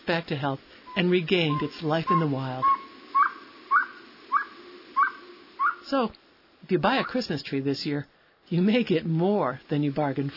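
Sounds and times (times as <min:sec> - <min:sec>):
speech: 0:00.1 - 0:02.8, 0:05.9 - 0:10.3
small owl calling with whistled notes sweeping upward: 0:00.8 - 0:06.0, 0:06.9 - 0:07.3.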